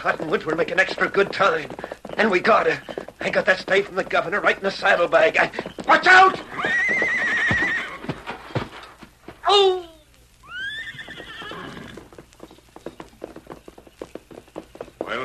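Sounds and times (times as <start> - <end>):
speech: 0.0 - 6.8, 9.5 - 9.8
pony galloping hoofbeats: 0.0 - 9.8, 10.4 - 15.2
pony neighing with high whinnies: 5.4 - 8.7, 10.4 - 12.2.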